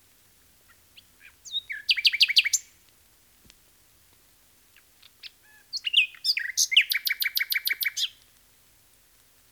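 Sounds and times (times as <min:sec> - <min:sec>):
common nightingale song: 0:00.7 - 0:02.8, 0:04.8 - 0:08.2.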